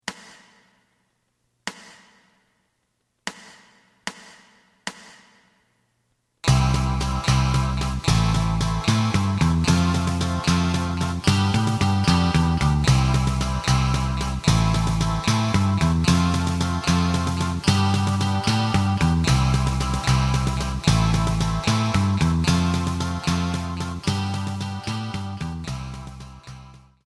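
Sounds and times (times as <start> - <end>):
lead guitar: 6.4 - 27.0.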